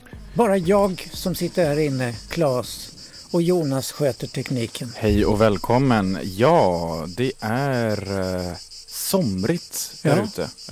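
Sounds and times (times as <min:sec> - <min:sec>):
crickets chirping: 0:00.0 - 0:10.7
speech: 0:00.4 - 0:10.7.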